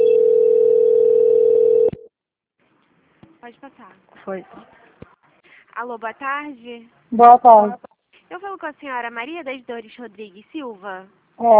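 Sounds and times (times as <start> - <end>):
telephone call-transfer tone: 0.0 - 2.1
speech: 3.5 - 4.8, 5.8 - 11.5.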